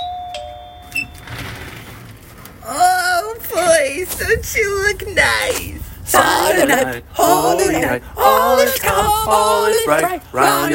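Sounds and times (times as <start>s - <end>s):
electronic doorbell rung by Christmas carolers chiming: 0.0s - 1.6s
speech: 3.8s - 10.7s.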